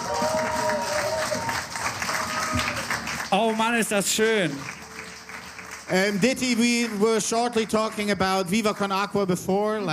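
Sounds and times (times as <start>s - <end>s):
applause from a live audience after a song: 0.0s - 8.9s
speech: 3.3s - 4.8s, 5.9s - 9.9s.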